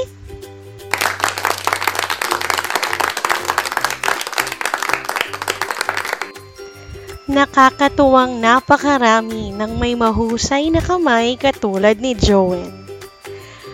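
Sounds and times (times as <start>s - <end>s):
enthusiastic applause of many hands clapping: 0.9s - 6.4s
speech: 7.3s - 12.8s.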